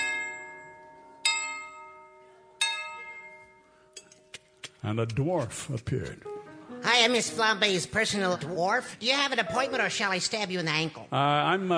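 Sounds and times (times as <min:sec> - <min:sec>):
doorbell chiming at a front door: 0:00.0 - 0:03.8
speech: 0:04.8 - 0:06.3, 0:06.9 - 0:11.7.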